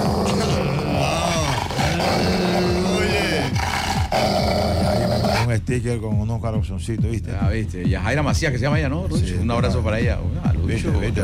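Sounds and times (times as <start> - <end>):
dogs barking and growling: 0.0 - 5.5
speech: 5.5 - 11.2.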